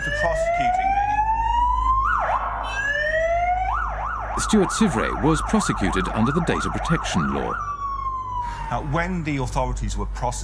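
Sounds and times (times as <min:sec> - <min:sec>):
police motorbike siren being tested by an officer: 0:00.0 - 0:09.2
speech: 0:00.2 - 0:00.9, 0:04.5 - 0:07.7, 0:08.7 - 0:10.4.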